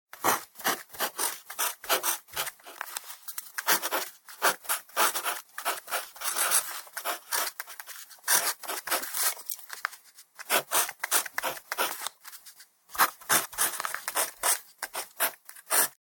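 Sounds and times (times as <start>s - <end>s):
mechanical pen writing: 0.2s - 2.8s, 3.6s - 9.1s, 10.4s - 12.1s, 13.0s - 16.0s.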